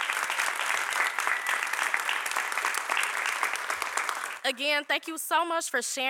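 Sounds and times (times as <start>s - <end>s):
audience applause: 0.0s - 4.4s
speech: 4.4s - 6.0s.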